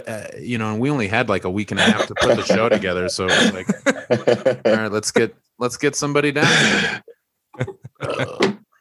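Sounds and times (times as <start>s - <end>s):
speech: 0.0s - 7.0s, 7.6s - 8.5s
laughter: 1.8s - 5.3s, 7.6s - 8.5s
person burping and belching: 2.3s - 4.9s, 8.0s - 8.6s.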